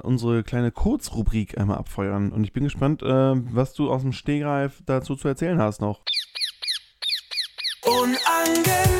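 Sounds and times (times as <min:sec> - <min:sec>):
speech: 0:00.0 - 0:06.2
squawking bird calls in a segment jingle: 0:06.1 - 0:08.8
bright jingle music: 0:07.8 - 0:08.9.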